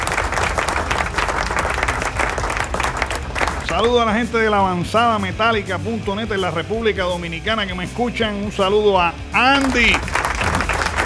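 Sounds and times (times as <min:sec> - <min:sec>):
applause sound effect of many hands clapping: 0:00.0 - 0:04.2, 0:09.6 - 0:11.0
speech: 0:03.7 - 0:10.2.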